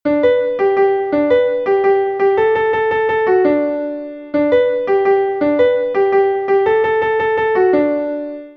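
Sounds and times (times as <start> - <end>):
piano refrain: 0.0 - 8.5.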